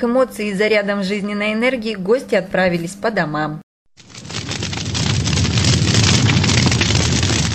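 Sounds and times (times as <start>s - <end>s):
speech: 0.0s - 3.6s
festive fireworks display booming and crackling: 4.0s - 7.5s.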